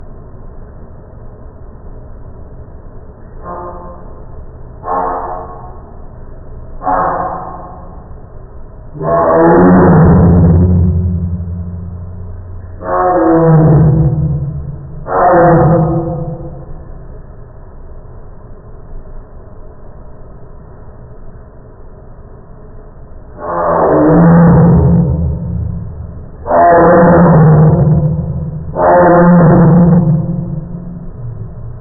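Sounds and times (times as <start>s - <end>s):
tiger barking: 4.8s - 5.9s, 6.8s - 8.1s, 9.0s - 16.8s, 23.4s - 31.8s.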